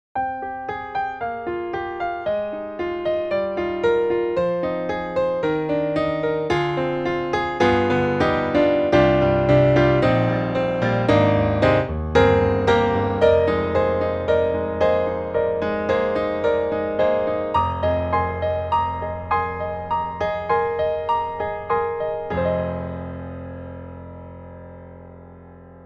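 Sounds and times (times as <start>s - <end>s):
Steinway grand piano: 0.2s - 25.8s.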